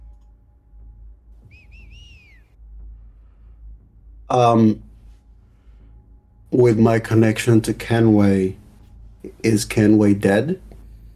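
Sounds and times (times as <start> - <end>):
low rumble: 0.0 - 11.1
person whistling short rising-and-falling notes: 1.4 - 2.6
speech: 4.3 - 4.9, 6.5 - 8.6, 9.2 - 10.7.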